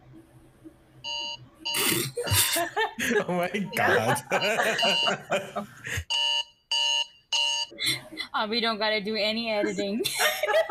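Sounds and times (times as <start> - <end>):
electronic wake-up alarm beeping: 1.0 - 2.7, 3.6 - 5.4, 6.1 - 7.7
people laughing: 2.2 - 6.0, 9.8 - 10.7
speech: 2.6 - 6.1, 8.4 - 10.7.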